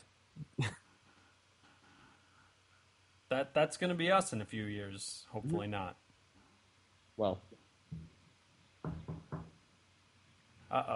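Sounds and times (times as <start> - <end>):
speech: 3.3 - 6.0, 7.2 - 8.0, 10.7 - 10.9
knuckles knocking on a wooden surface: 8.8 - 9.6.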